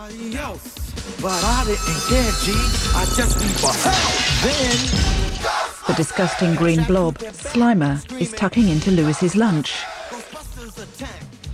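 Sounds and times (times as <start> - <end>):
speech: 0.1 - 9.9
expensive glassware falling and shattering on a store floor: 1.4 - 5.5.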